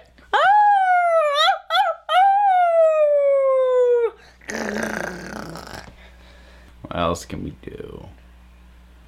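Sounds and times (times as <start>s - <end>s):
person imitating a wolf howl: 0.3s - 5.9s
speech: 7.1s - 8.2s.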